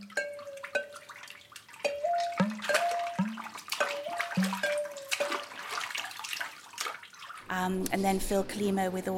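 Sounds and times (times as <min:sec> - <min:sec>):
rhythmic water percussion with hollow pitched knocks and plops: 0:00.0 - 0:01.2, 0:01.8 - 0:05.8
splashing, sloshing water: 0:00.0 - 0:07.6
speech: 0:07.6 - 0:09.1.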